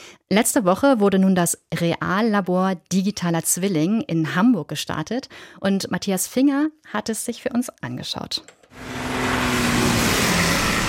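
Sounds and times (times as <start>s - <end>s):
speech: 0.3s - 9.0s
heavy vehicle roaring past on a road: 8.8s - 10.8s.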